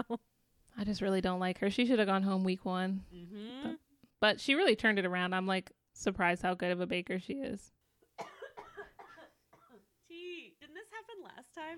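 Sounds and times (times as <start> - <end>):
speech: 0.0 - 8.3, 11.2 - 11.7
harsh dry coughs: 8.2 - 9.8.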